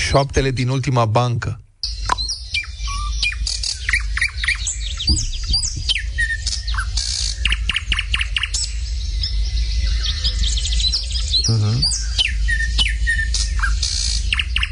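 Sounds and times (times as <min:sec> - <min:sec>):
thrush nightingale singing: 0:00.0 - 0:01.1, 0:01.8 - 0:14.7
speech: 0:00.1 - 0:01.6, 0:05.1 - 0:05.7
steady low rumble: 0:01.8 - 0:14.7
listener murmuring: 0:11.4 - 0:11.9.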